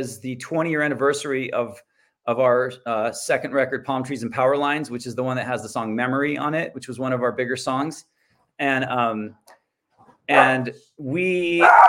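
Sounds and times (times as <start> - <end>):
speech: 0.0 - 9.5, 10.3 - 11.8
dog barking and yowling: 10.3 - 10.7, 11.6 - 11.8.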